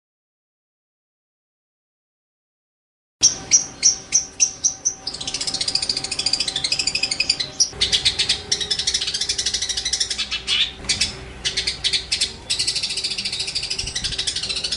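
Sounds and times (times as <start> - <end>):
long-tailed shrike song with trills and rattling phrases: 3.2 - 14.7.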